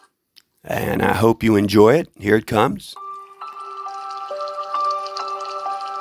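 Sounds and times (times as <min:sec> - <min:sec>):
speech: 0:00.6 - 0:03.0
bamboo water fountain trickling: 0:03.0 - 0:05.9
soft irregular drips: 0:03.0 - 0:05.9.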